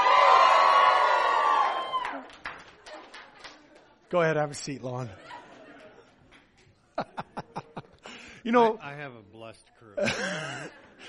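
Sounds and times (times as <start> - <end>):
scattered whoops and shouts: 0.0 - 2.2
large church audience screaming and cheering: 0.0 - 2.3
speech: 4.1 - 5.4, 8.4 - 10.9
laughter: 5.0 - 8.8, 10.0 - 11.0.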